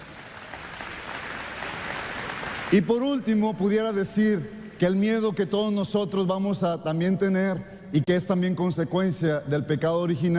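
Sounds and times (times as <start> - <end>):
faint applause during a religious sermon: 0.0 - 2.8
speech: 2.7 - 10.3.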